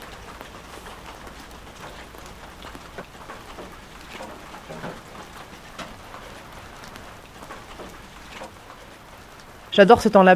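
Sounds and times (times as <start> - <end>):
steady rain falling outdoors: 0.0 - 10.3
speech: 9.8 - 10.3.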